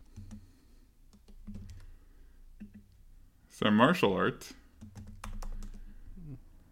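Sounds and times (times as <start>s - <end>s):
typing on a computer keyboard: 0.0s - 0.5s, 1.1s - 1.9s, 4.8s - 5.9s
speech: 3.6s - 4.6s.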